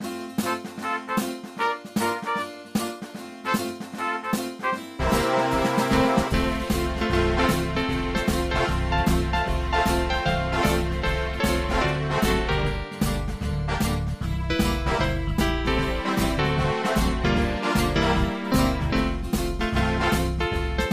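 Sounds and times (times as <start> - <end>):
strings: 0.0 - 20.9
brass: 0.4 - 20.9
CP70 electric grand piano: 5.0 - 20.9.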